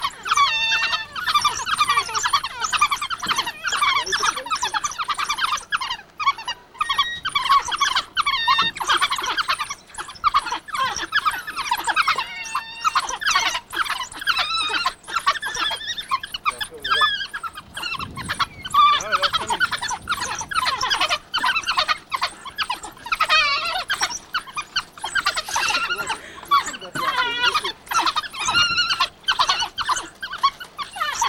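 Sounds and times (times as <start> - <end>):
African hunting dog calling: 0.0 - 31.2.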